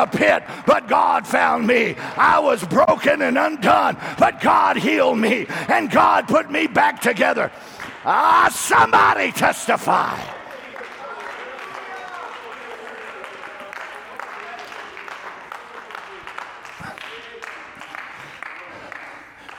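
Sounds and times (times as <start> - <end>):
speech: 0.0 - 10.4
scattered hand claps from audience: 10.4 - 19.5.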